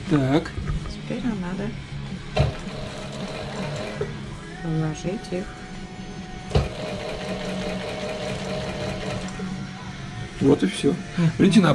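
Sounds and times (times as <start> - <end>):
speech: 0.1 - 2.5, 4.6 - 5.6, 10.4 - 11.7
sewing machine stitching a headphone ear pad with foam inside: 2.4 - 4.2, 6.5 - 9.5.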